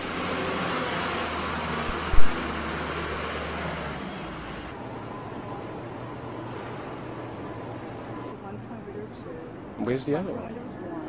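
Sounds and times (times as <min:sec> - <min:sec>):
dump trucks rolling along a road carting debris: 0:00.0 - 0:08.3
thud: 0:01.9 - 0:02.4
speech: 0:09.1 - 0:10.9.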